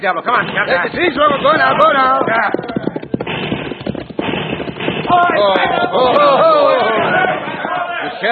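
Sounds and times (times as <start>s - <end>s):
speech: 0.0s - 2.8s, 5.1s - 6.8s, 8.2s - 8.3s
gunshots in a Western-style shootout: 0.3s - 8.1s
men shouting: 5.1s - 8.3s.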